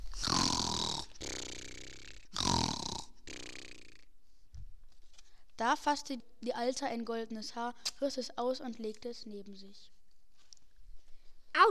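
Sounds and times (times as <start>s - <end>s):
person imitating snoring: 0.0s - 4.0s
speech: 5.6s - 10.0s.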